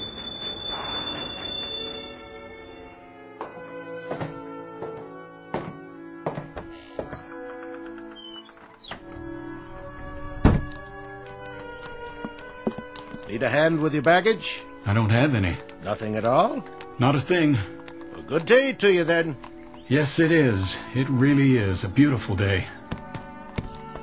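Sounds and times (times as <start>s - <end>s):
train steel wheels squealing while stopping at station: 0.0s - 2.4s
speech: 13.4s - 22.8s.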